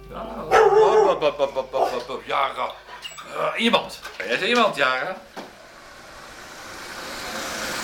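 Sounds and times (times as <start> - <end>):
dog barking: 0.5 - 2.0
speech: 1.2 - 1.6, 2.4 - 5.4.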